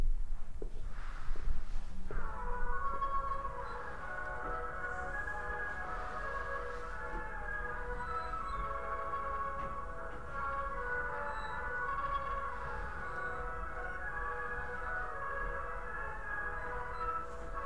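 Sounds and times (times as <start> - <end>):
hollow eerie droning rumble with layered sustained tones: 0.9 - 17.6.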